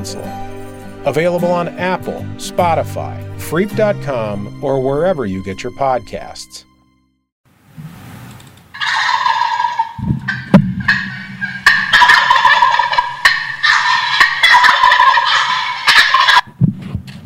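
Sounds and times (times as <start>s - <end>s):
speech: 0.0s - 6.7s
wild turkeys gobbling: 8.7s - 16.5s
low thumps: 10.0s - 11.7s.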